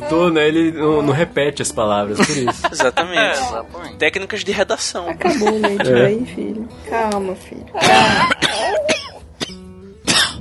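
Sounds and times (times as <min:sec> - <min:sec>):
speech: 0:00.0 - 0:08.3
laughter: 0:02.1 - 0:03.4, 0:05.2 - 0:06.2, 0:07.8 - 0:08.9
person coughing harshly into a microphone: 0:07.8 - 0:10.3.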